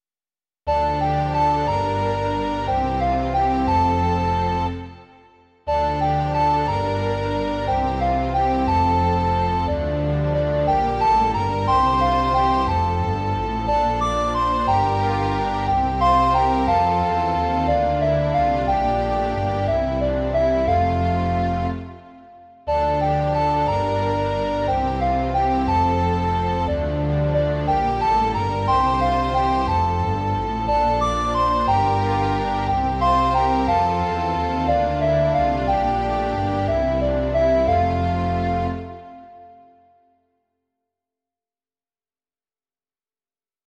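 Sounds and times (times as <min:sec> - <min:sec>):
string orchestra: 0:00.7 - 0:39.6
two recorders playing: 0:05.7 - 0:39.5.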